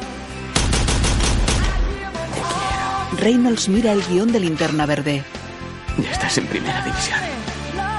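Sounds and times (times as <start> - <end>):
pistol gunfire in an action film scene: 0.5 - 2.1
speech: 3.2 - 5.4, 6.0 - 7.9.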